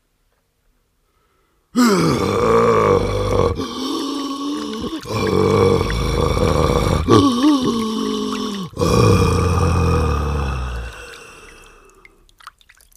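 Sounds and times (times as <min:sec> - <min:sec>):
dying creature groaning with gurgling undertones: 0:01.8 - 0:11.1.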